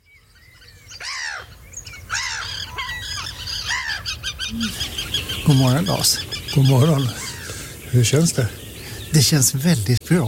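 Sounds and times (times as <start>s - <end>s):
birds chirping song: 0.0s - 10.2s
harsh bird squawks and honking calls: 2.1s - 7.5s
speech: 5.5s - 7.2s, 7.9s - 10.2s.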